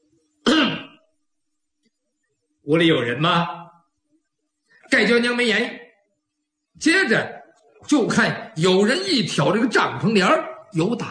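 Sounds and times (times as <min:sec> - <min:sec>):
person imitating a light cough outside a tent door: 0:00.4 - 0:01.0
speech: 0:02.6 - 0:03.6, 0:04.9 - 0:05.8, 0:06.8 - 0:11.0.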